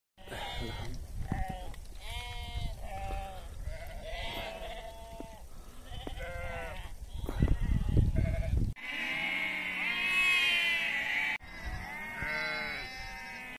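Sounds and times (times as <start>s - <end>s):
bighorn sheep: 0.2s - 13.5s.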